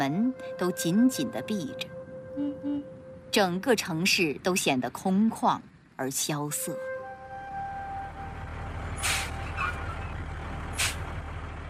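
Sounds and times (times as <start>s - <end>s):
speech: 0.0s - 2.8s, 3.4s - 6.9s
heavy vehicle rumbling low and steady: 0.0s - 11.6s
sharp loud hisses of air brakes: 9.0s - 9.5s, 10.8s - 11.1s
faint squeal of a heavy vehicle braking: 9.0s - 10.2s.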